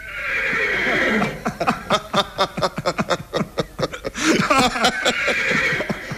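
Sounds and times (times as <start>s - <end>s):
horse neighing: 0.0s - 1.5s, 4.9s - 6.1s
laughter: 1.0s - 6.1s.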